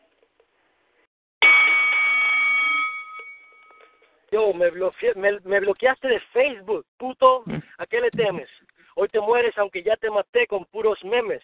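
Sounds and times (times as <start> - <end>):
bell ringing to start a round: 1.4 - 4.1
speech: 4.3 - 11.4.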